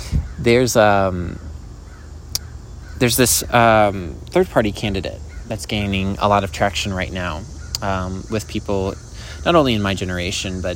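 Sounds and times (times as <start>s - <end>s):
crow cawing harshly: 0.1s - 0.6s, 1.2s - 3.1s, 5.2s - 5.6s, 7.4s - 9.7s
speech: 0.4s - 1.5s, 3.0s - 10.7s.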